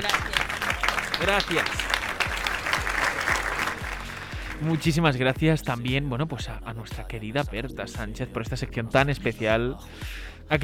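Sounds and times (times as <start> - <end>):
crowd applauding: 0.0 - 5.0
speech: 1.2 - 1.9, 4.6 - 10.6.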